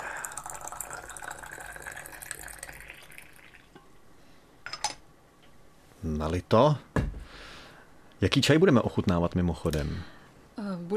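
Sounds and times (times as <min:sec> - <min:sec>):
hot water pouring from a thermos into a small teapot: 0:00.0 - 0:03.8
speech: 0:06.0 - 0:06.9, 0:08.2 - 0:10.1.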